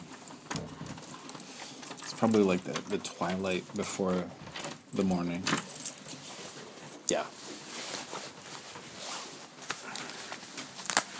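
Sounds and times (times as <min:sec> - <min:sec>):
rain pattering: 0:00.0 - 0:05.5
speech: 0:02.2 - 0:05.7.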